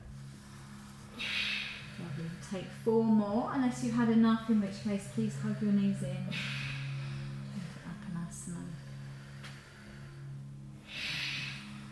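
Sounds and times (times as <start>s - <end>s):
heavy breathing during reverse crunch abdominal exercises: 0.0s - 11.9s
steady low droning tone: 0.0s - 11.9s
loud exhale: 1.2s - 2.0s, 6.3s - 7.5s
speech: 2.5s - 6.6s.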